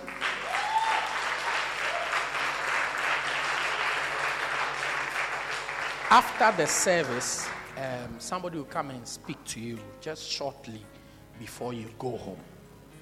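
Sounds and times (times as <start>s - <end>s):
audience clapping at a church service: 0.0s - 7.8s
speech: 6.1s - 12.5s.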